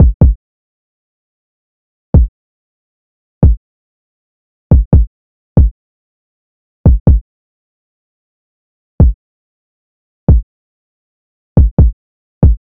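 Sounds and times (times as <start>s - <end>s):
140 BPM kick drum loop: 0.0s - 0.4s, 3.4s - 3.6s, 4.7s - 5.8s, 6.9s - 7.2s, 11.6s - 12.6s.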